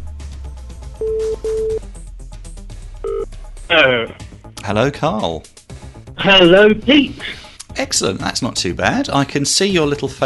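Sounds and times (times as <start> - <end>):
video phone electronic ringing tones: 1.0 - 1.8, 3.0 - 3.3
speech: 1.0 - 1.9, 3.7 - 5.6, 6.2 - 10.2.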